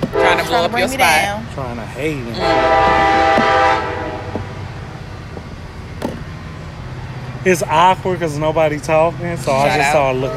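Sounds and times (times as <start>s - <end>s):
metro train rumbling past: 0.0s - 10.3s
metro train horn sounding in a sustained tone: 0.1s - 0.7s, 2.4s - 4.6s
speech: 0.5s - 3.6s, 7.4s - 10.3s.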